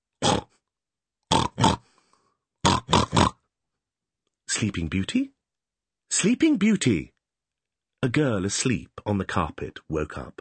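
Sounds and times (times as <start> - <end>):
human voice imitating pigs grunting and oinking: 0.2 - 0.6, 1.3 - 1.8, 2.6 - 3.4
speech: 4.6 - 5.4, 6.1 - 7.1, 8.0 - 10.3.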